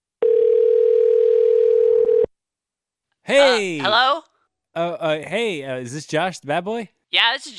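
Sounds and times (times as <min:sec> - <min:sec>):
telephone dial tone while placing a call: 0:00.2 - 0:02.3
speech: 0:03.3 - 0:07.5.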